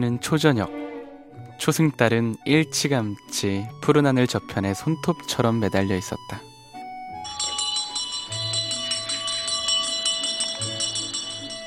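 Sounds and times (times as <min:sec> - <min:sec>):
speech: 0:00.0 - 0:00.9, 0:01.6 - 0:06.5
distant hand bell ringing: 0:07.2 - 0:11.6.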